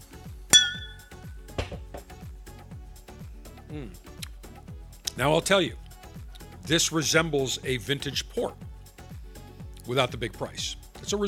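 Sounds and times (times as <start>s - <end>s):
wine glasses clinking during a toast with reserve port: 0.6s - 1.2s
glass handling noise: 0.6s - 2.1s
speech: 3.7s - 4.1s, 5.2s - 5.8s, 6.7s - 8.6s, 9.9s - 11.2s.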